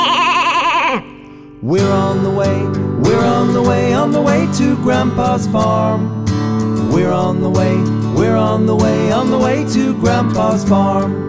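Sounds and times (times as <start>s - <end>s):
woolly white sheep bleating on a farm: 0.0s - 1.2s
speech: 1.0s - 6.2s, 6.9s - 11.2s.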